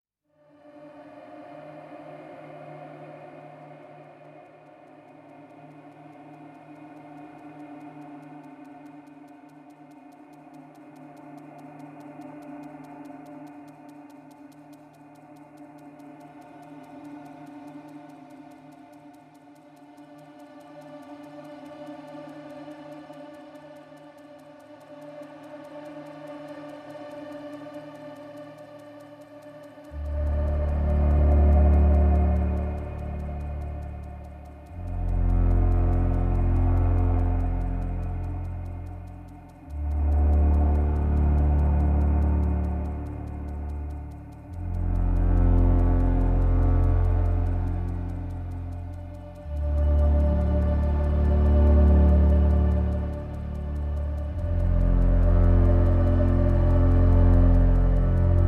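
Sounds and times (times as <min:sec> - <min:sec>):
ticking bass: 0:30.0 - 0:58.4.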